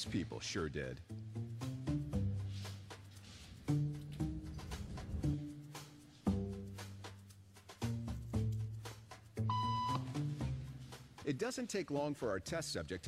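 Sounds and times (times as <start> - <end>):
speech: 0.0 - 1.5, 11.3 - 13.0
steady music with a repeating note-by-note pattern: 0.0 - 13.0
short electronic beep tone: 9.5 - 10.0.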